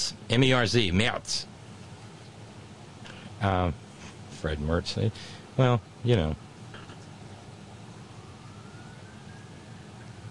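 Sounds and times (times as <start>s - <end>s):
low traffic rumble: 0.0s - 10.2s
speech: 0.3s - 1.5s, 3.4s - 3.8s, 4.4s - 6.5s
faint passing emergency vehicle siren wailing: 7.1s - 10.2s.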